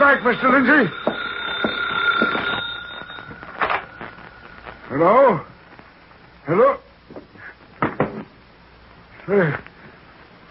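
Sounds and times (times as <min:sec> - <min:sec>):
office telephone ringing: 0:00.0 - 0:05.6
speech: 0:00.1 - 0:01.1, 0:04.9 - 0:05.5, 0:06.5 - 0:07.2, 0:09.3 - 0:09.7.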